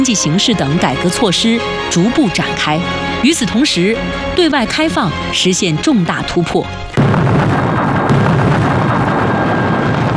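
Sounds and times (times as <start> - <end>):
speech: 0.0 - 7.5
explosive blasting on a mountainside: 6.8 - 10.1.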